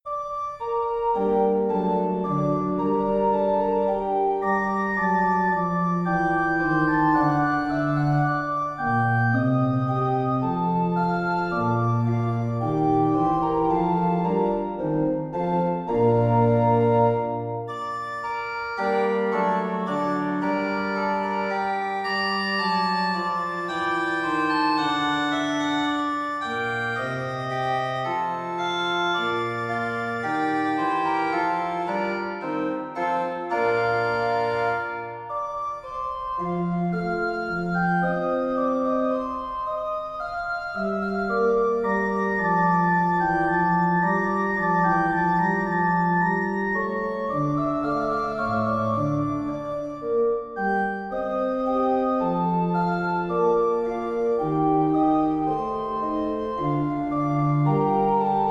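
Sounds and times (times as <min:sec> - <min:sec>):
organ bourree in B flat major: 0:00.1 - 0:58.4.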